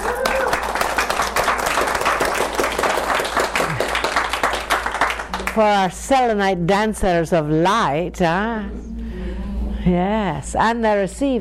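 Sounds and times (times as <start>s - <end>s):
group of people clapping in dense steady applause: 0.0s - 5.9s
speech: 5.6s - 8.9s, 9.8s - 11.3s.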